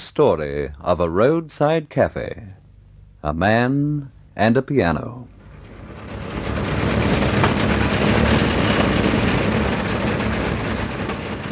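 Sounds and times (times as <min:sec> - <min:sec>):
speech: 0:00.2 - 0:02.6, 0:03.2 - 0:05.4
old truck engine rumbling and droning: 0:05.2 - 0:11.5
road noise: 0:05.3 - 0:11.5.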